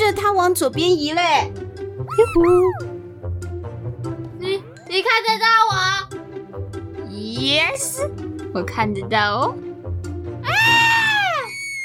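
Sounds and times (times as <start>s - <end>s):
speech: 0.3s - 2.9s, 4.9s - 6.0s, 7.3s - 9.6s
high scream of fright: 10.4s - 11.8s.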